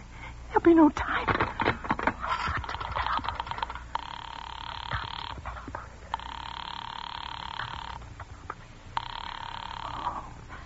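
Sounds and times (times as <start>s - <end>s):
speech: 0.6s - 1.4s
telephone ringing: 2.6s - 8.1s, 8.9s - 10.2s.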